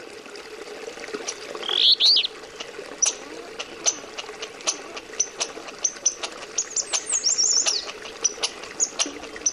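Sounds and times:
bird calls with high chirps and whistled phrases in Alaska: 1.6 - 2.3, 6.6 - 7.9
brief rustling or clicking sounds: 3.6 - 9.5.

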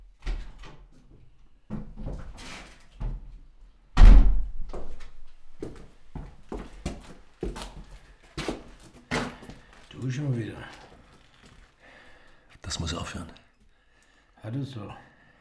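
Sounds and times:
door opening and shutting with a heavy thump: 0.2 - 0.9, 4.0 - 5.4
shuffling: 4.6 - 13.4
speech: 10.0 - 10.8, 12.7 - 13.4, 14.4 - 15.1
creaks: 10.7 - 11.8.

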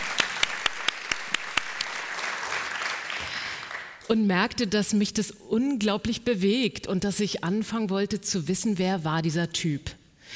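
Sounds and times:
audience applause: 0.0 - 4.0
sharp claps: 0.0 - 4.0
speech: 4.1 - 10.3.

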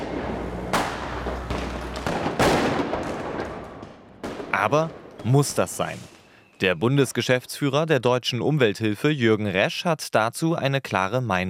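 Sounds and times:
low hum: 0.0 - 5.2
New Year's Eve firecrackers and fireworks exploding: 0.0 - 6.6
speech: 4.6 - 11.4.

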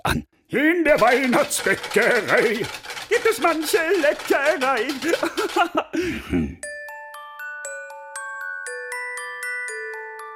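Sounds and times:
speech: 0.1 - 6.7
laughter: 4.8 - 6.4
small bells chiming a soft steady melody: 6.6 - 10.3.

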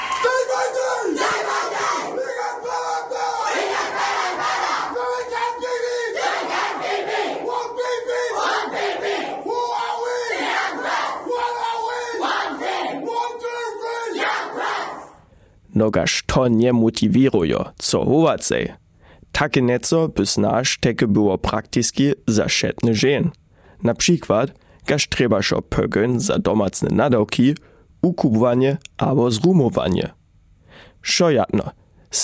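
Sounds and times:
group of voices shouting a war cry in unison: 0.0 - 15.2
speech: 15.8 - 18.8, 19.4 - 30.2, 31.0 - 32.2.

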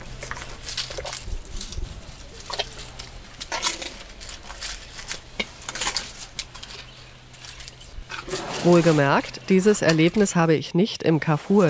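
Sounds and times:
elephant cow chewing with crunchy rustling munching: 0.0 - 9.7
elephant cow snorting: 8.1 - 9.1
speech: 8.6 - 11.6.

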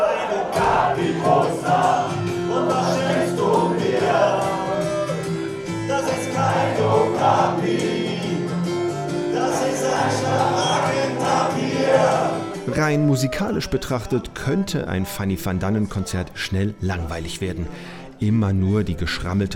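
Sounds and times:
concert crowd cheering: 0.0 - 8.5, 9.2 - 14.7
large concert crowd singing along: 0.0 - 12.7
speech: 12.7 - 19.5.

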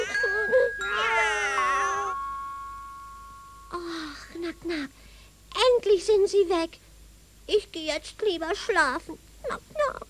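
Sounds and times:
cats meowing and caterwauling in wavering yowls: 0.0 - 2.2
thin steady ringing tone: 0.0 - 5.1
speech: 6.0 - 6.9, 7.5 - 10.0.

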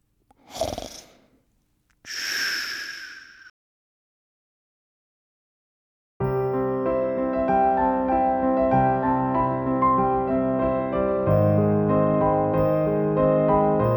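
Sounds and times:
person snoring: 0.4 - 1.4, 2.1 - 3.5
music: 6.2 - 13.9.

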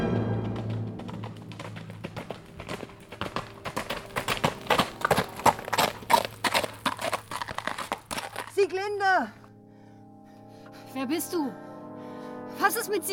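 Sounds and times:
horse hooves clip-clopping: 0.2 - 8.9
speech: 11.0 - 11.6, 12.7 - 13.1.

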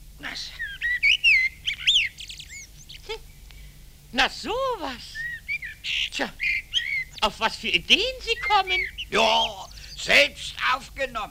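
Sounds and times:
male blackbird singing by a lilac bush: 0.2 - 11.2
speech: 0.4 - 0.6, 4.1 - 5.2, 6.2 - 6.5, 7.2 - 11.3.

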